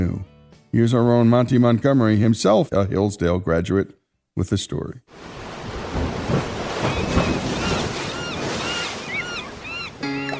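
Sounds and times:
speech: 0:00.7 - 0:05.4
ocean waves at sea: 0:05.1 - 0:10.3
gusting wind at sea: 0:05.2 - 0:10.0
high-pitched cries: 0:07.7 - 0:10.3.

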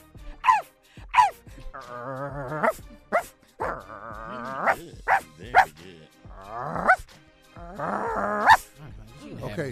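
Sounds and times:
person imitating a dog with barks, yips and whiny howls: 0:00.4 - 0:02.8, 0:03.6 - 0:05.7, 0:06.3 - 0:07.0, 0:07.6 - 0:08.6.

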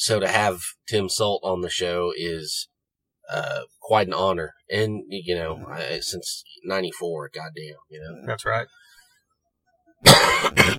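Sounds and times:
speech: 0:00.0 - 0:02.7, 0:03.3 - 0:08.8, 0:10.0 - 0:10.7
person coughing with a throat-clearing quality: 0:10.0 - 0:10.7.

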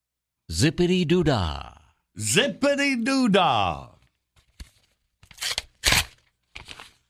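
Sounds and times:
speech: 0:00.5 - 0:03.9
paper envelope being torn open: 0:05.3 - 0:07.0.

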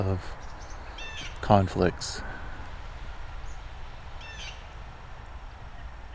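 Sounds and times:
speech: 0:00.0 - 0:00.5, 0:01.4 - 0:02.3
outdoor hiss: 0:00.0 - 0:06.1
blue jay call: 0:00.4 - 0:01.4, 0:03.3 - 0:04.8.

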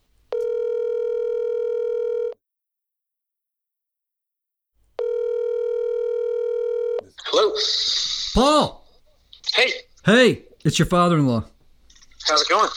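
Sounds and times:
outgoing telephone ringing tone with steady buzzing: 0:00.3 - 0:02.4, 0:05.0 - 0:07.1
speech: 0:07.6 - 0:08.8, 0:09.6 - 0:11.5, 0:12.2 - 0:12.7.

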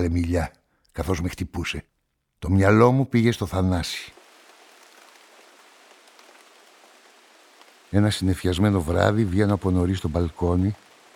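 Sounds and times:
speech: 0:00.0 - 0:04.2, 0:07.9 - 0:10.8
steady rain pattering on a surface: 0:02.5 - 0:11.1.

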